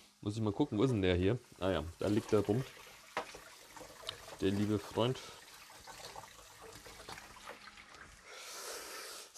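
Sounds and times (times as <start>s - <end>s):
speech: 0.2s - 2.9s, 4.4s - 5.4s
water running from a tap: 0.2s - 8.9s
small knocks of a utensil: 3.2s - 3.4s.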